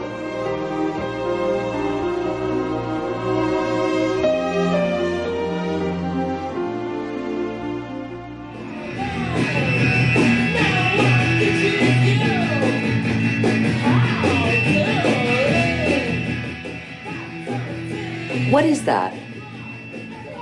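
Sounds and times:
loud band music blaring through a house: 0:00.0 - 0:20.4
dense driving rock track with a singing voice: 0:08.5 - 0:20.4.

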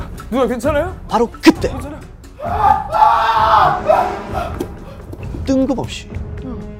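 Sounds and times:
speech: 0:00.4 - 0:04.6, 0:05.5 - 0:06.3
several people screaming and shouting: 0:02.4 - 0:04.7.

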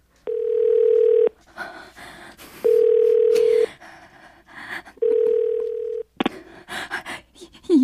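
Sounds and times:
telephone ringback tone: 0:00.3 - 0:01.3, 0:02.6 - 0:03.6, 0:05.0 - 0:06.1
soft voice-like sounds on a telephone call: 0:07.2 - 0:07.8.

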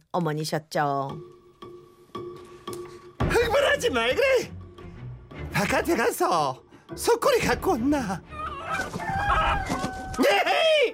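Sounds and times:
speech: 0:00.1 - 0:01.4, 0:03.8 - 0:04.6, 0:05.6 - 0:10.9
chicken on a refrigerator squawking and crowing: 0:08.3 - 0:10.2.

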